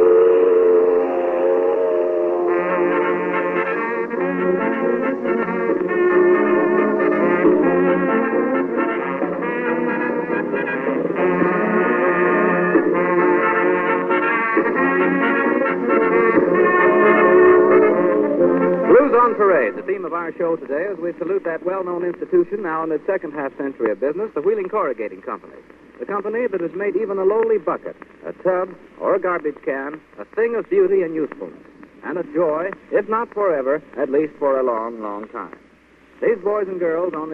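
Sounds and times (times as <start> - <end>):
steel mill steam whistle blowing: 0.0 - 19.8
speech: 20.3 - 35.6, 36.2 - 37.3.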